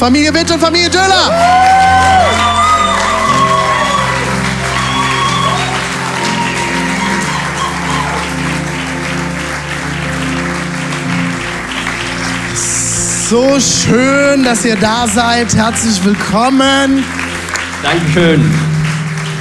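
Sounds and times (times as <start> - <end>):
speech: 0.0 - 2.5, 13.3 - 17.2, 17.8 - 18.7
sustained music or tones: 0.0 - 19.3
large church audience applauding: 1.1 - 19.3
whoops and cheers: 1.2 - 8.8.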